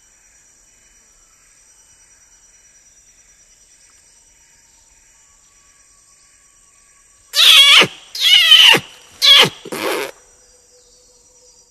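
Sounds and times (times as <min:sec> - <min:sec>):
Sumatran orangutan giving shrill rasping squeals: 0:07.4 - 0:10.1.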